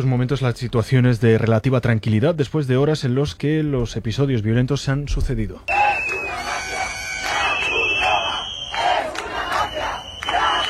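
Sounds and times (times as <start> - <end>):
speech: 0.0 - 6.1
crowd shouting protest slogans blocking Red Cross trucks: 5.7 - 10.6.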